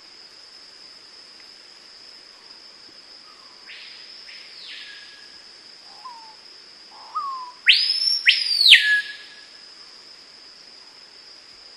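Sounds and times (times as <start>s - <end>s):
screaming piha whistle call: 7.1s - 9.3s.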